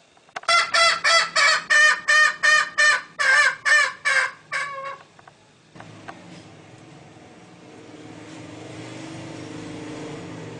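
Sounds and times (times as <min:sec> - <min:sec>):
low rumbling background noise: 0:00.0 - 0:10.5
green junglefowl hen nasal clucking: 0:00.4 - 0:05.1.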